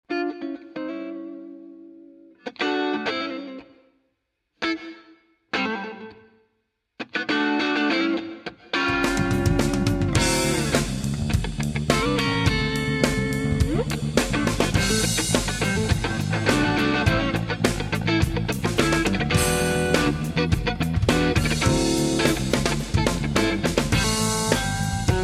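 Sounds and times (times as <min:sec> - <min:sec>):
Stratocaster electric guitar: 0:00.0 - 0:03.9, 0:04.6 - 0:06.4, 0:07.0 - 0:25.2.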